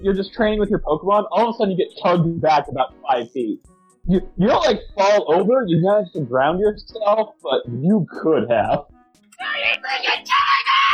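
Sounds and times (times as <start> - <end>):
speech: 0.0 - 8.9
canned shrill scream sound effect played from a soundboard: 9.4 - 10.9.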